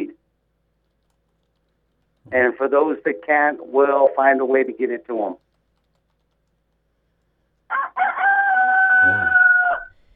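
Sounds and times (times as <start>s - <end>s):
speech: 2.3s - 5.4s
rooster crowing near hens: 7.7s - 10.0s.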